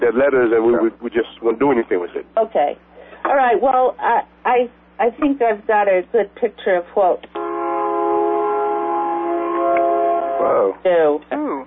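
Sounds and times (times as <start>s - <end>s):
speech: 0.0s - 7.6s, 10.4s - 11.5s
train horn blaring over a conference call phone line: 7.3s - 10.8s.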